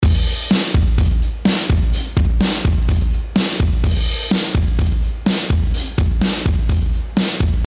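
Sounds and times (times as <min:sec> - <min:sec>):
vintage drums: 0:00.0 - 0:07.6.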